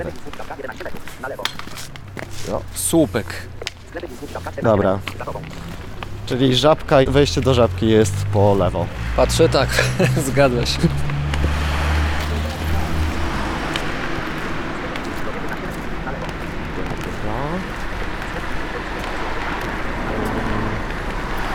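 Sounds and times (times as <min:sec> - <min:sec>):
speech: 0:00.0 - 0:05.6, 0:06.3 - 0:11.2
car idling at a street intersection: 0:00.0 - 0:21.5
faint voices murmuring: 0:00.0 - 0:21.5
street traffic noise: 0:00.0 - 0:21.5
laughter: 0:08.4 - 0:11.4, 0:12.2 - 0:21.2.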